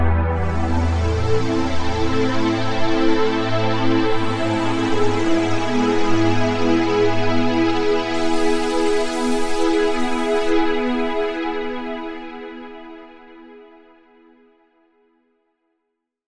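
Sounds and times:
synth pads: 0.2s - 12.9s.

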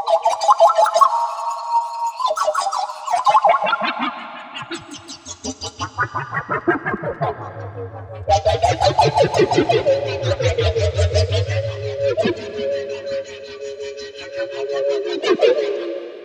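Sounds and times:
synthesizer sweep: 0.1s - 16.2s.

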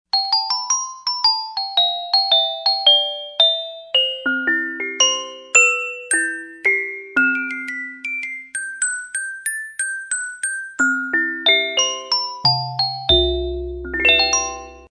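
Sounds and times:
synthesizer glockenspiel preset: 0.1s - 14.8s.

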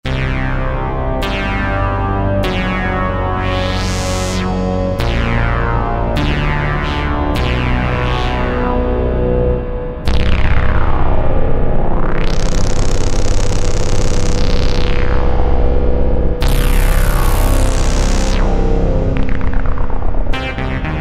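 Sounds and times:
Roland JD-990 synthesizer factory patch: 0.1s - 20.9s.

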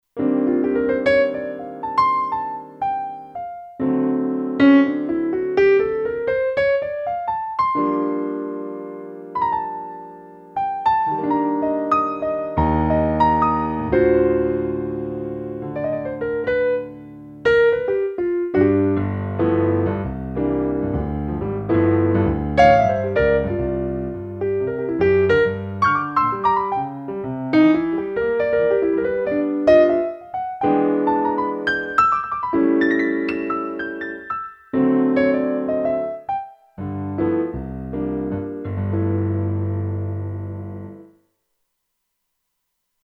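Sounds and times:
stereo solo piano on a Kurzweil K2500X: 0.0s - 43.0s.

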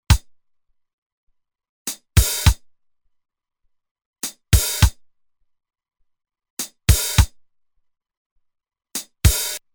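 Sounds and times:
drum machine break factory rhythm: 2.2s - 2.6s, 4.6s - 5.0s, 6.9s - 7.3s, 9.3s - 9.6s.

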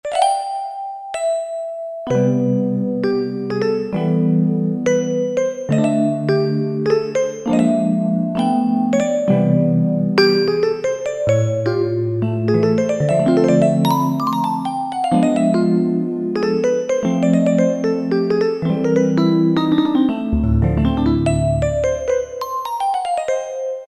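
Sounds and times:
Roland D-50 synthesizer vibraphone preset: 0.1s - 23.8s.

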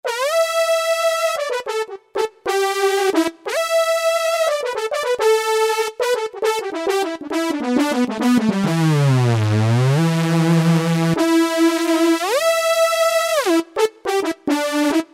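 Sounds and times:
Roland D-110 synth lead factory patch: 0.0s - 15.1s.

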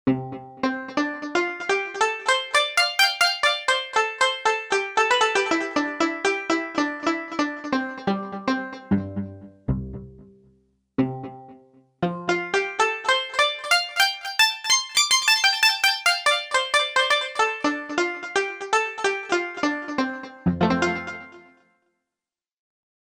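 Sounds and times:
electric koto: 0.1s - 9.0s, 12.1s - 21.5s.

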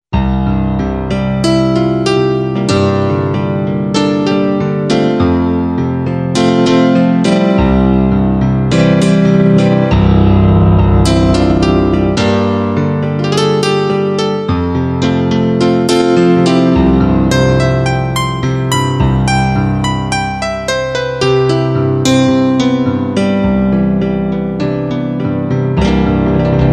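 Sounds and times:
low piano notes: 0.2s - 26.7s.

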